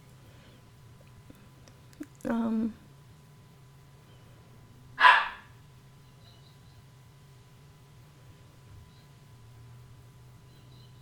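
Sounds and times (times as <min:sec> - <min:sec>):
low steady hum: 0:00.0 - 0:11.0
dog barking: 0:05.0 - 0:05.5.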